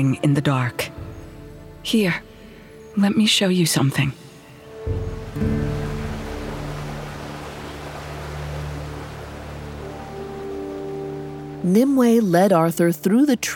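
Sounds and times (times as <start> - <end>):
speech: 0.0 - 1.0, 1.8 - 2.3, 3.0 - 4.2, 4.8 - 5.6, 11.6 - 13.5
waterfall rushing into a pool: 5.4 - 10.4.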